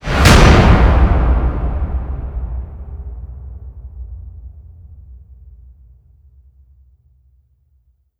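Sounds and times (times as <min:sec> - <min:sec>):
impact hit: 0:00.0 - 0:06.2.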